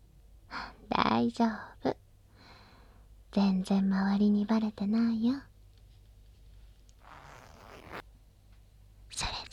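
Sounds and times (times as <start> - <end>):
speech: 1.2 - 2.0, 3.3 - 5.5
trouser zipper being pulled down: 7.0 - 8.0.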